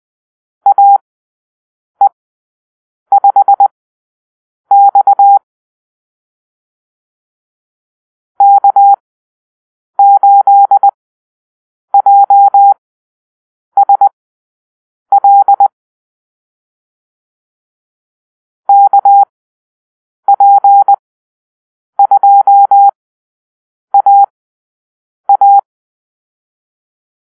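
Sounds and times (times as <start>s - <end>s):
morse code call-sign drill: 0.7s - 1.0s, 3.1s - 3.7s, 4.7s - 5.4s, 8.4s - 9.0s, 10.0s - 11.0s, 12.0s - 12.8s, 13.8s - 14.1s, 15.1s - 15.7s, 18.7s - 19.3s, 20.3s - 21.0s, 22.0s - 23.0s, 24.0s - 24.3s, 25.3s - 25.6s.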